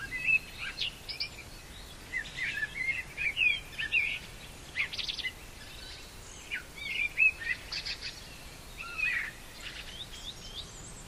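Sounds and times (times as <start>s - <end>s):
common blackbird singing in pine forest: 0.0s - 11.0s
faint background hiss: 0.0s - 11.0s.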